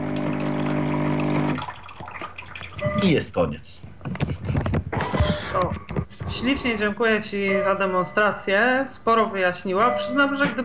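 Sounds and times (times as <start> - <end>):
water flowing through an espresso machine rinsing itself: 0.0 - 3.2
faint water drips: 1.6 - 3.0
speech: 3.0 - 4.4, 5.6 - 10.6.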